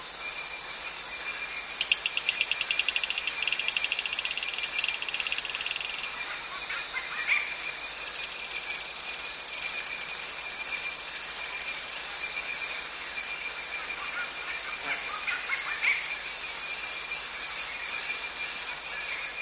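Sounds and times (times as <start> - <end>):
insect chorus buzzing in tropical rain forest in Cameroon: 0.0 - 19.3.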